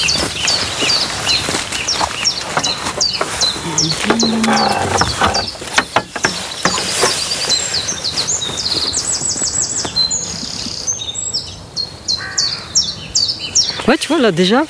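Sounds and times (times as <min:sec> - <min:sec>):
bird chirps and calls: 0:00.0 - 0:14.6
great tit singing: 0:00.0 - 0:14.6
speech: 0:14.1 - 0:14.6.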